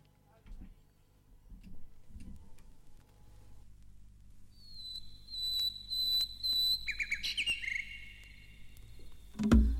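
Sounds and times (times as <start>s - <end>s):
small bird chirps: 4.5s - 9.4s
quiet music: 8.2s - 9.7s.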